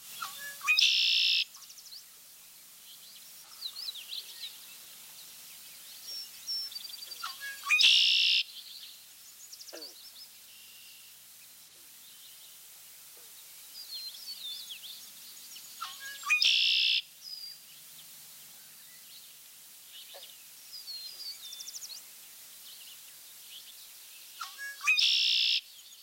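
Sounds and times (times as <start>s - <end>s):
red-winged blackbird conk-a-ree phrases ending in buzzy trill: 0.0s - 12.6s, 13.2s - 26.0s
red-winged blackbird softer chips and whistles: 0.2s - 1.5s, 7.2s - 8.4s, 15.8s - 17.0s, 24.4s - 25.6s.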